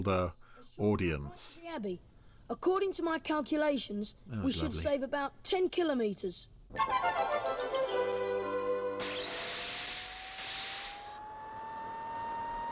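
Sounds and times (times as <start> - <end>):
speech: 0.0 - 8.2
high whine of a jet-powered flying car engine: 9.0 - 12.7
steady electronic hum of a jet-powered flying car: 9.0 - 12.7.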